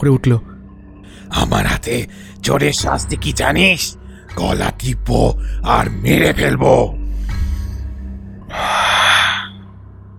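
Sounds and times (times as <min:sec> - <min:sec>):
speech: 0:00.0 - 0:00.5, 0:01.1 - 0:07.0
man exhaling an angry heavy breath: 0:08.5 - 0:09.6.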